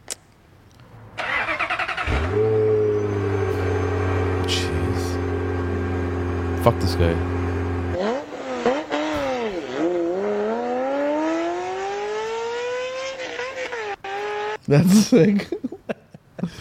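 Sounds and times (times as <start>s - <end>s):
Ferrari motorcycle engine idling and revving: 0.9s - 14.7s
speech: 6.6s - 7.4s, 14.7s - 15.7s
person exclaiming: 14.8s - 15.6s
laughter: 14.8s - 16.5s.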